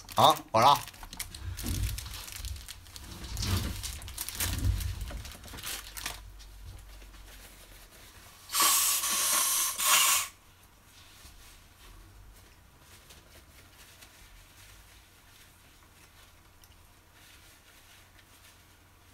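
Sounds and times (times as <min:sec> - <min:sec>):
tissue rustling and crinkling: 0:00.0 - 0:08.4, 0:10.8 - 0:19.1
speech: 0:00.2 - 0:00.9
person with a slight cold blowing nose: 0:08.5 - 0:10.4.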